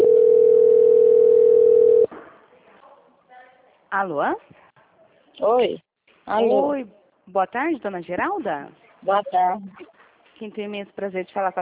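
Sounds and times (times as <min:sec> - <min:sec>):
steady single-pitch telephone line tone during a call transfer: 0:00.0 - 0:02.1
speech: 0:04.0 - 0:04.6, 0:05.4 - 0:11.6.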